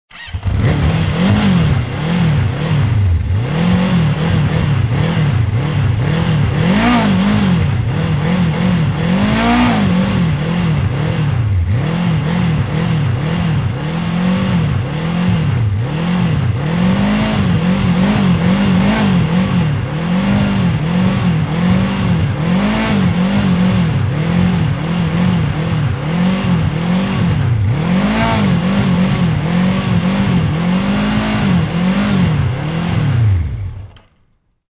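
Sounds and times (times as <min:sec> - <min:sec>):
motorcycle starting and stopping: 0:00.1 - 0:34.6.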